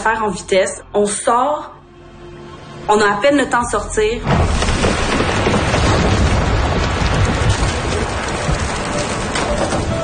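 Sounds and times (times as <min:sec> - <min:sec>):
speech: 0:00.0 - 0:01.8, 0:02.9 - 0:04.6
torrential rain: 0:04.3 - 0:10.0.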